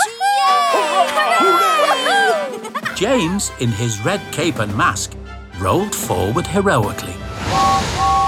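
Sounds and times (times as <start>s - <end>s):
crowd of children cheering for an old steel engine: 0.0s - 2.8s
laughter: 0.0s - 3.8s
speech: 3.0s - 7.9s.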